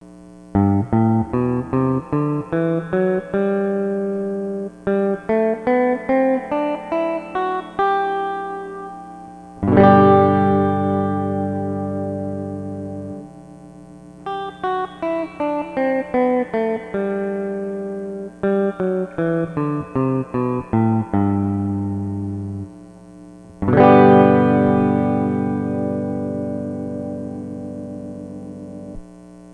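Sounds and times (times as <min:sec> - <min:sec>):
guitars through Weber 5G15 reverb pedal in G major: 0:00.5 - 0:29.5.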